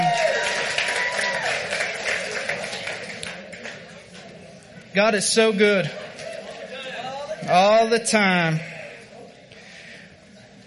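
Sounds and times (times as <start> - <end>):
audience applauding a worship team: 0.0 - 4.0
faint murmur of voices: 1.0 - 10.6
speech: 5.0 - 6.0, 7.5 - 8.7.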